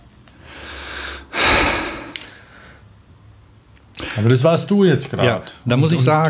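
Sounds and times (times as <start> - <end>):
heavy snorting breaths: 0.4 - 2.8
speech: 4.2 - 6.2.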